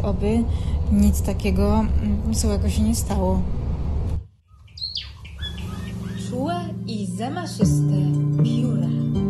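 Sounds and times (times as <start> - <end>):
speech: 0.0 - 3.7, 6.3 - 9.1
distant small bird singing, possibly a chiffchaff: 4.4 - 6.7.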